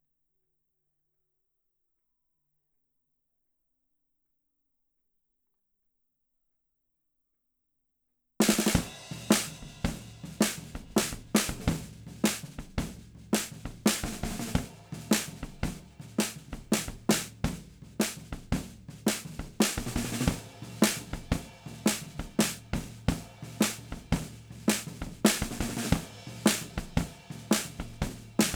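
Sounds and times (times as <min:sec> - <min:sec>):
snare drums: 0:08.4 - 0:28.5.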